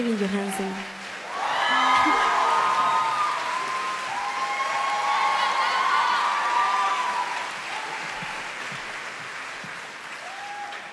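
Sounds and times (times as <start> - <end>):
speech: 0.0 - 1.0
audience applauding: 0.0 - 10.9
shrill whoops and cheers from the crowd: 1.2 - 8.9, 10.1 - 10.9.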